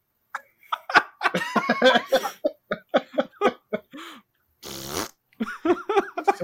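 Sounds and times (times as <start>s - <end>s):
giggling: 0.4s - 4.0s, 5.4s - 6.4s
person imitating a serrated fart: 4.6s - 5.2s.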